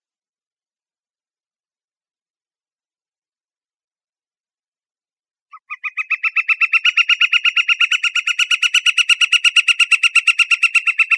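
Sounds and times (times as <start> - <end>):
bird calling with a rapid train of nasal pulsed notes: 5.5 - 11.1.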